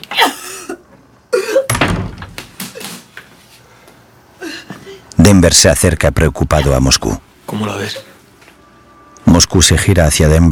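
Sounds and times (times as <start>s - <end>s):
door shutting with a thud: 1.7s - 2.6s
speech: 5.3s - 8.1s, 9.4s - 10.5s.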